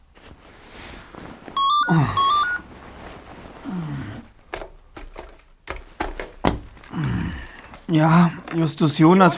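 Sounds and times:
shrill electronic telephone ring: 0:01.6 - 0:02.6
soft clunks and rustling of telephone receiver picked up: 0:01.6 - 0:02.6
speech: 0:01.9 - 0:02.2, 0:07.9 - 0:09.3.

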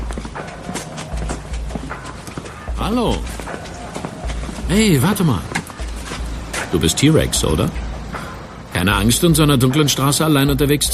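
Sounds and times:
hard-soled footsteps on asphalt: 0:00.0 - 0:08.3
speech: 0:02.9 - 0:03.7, 0:04.7 - 0:05.5, 0:06.7 - 0:07.8, 0:08.8 - 0:10.9.

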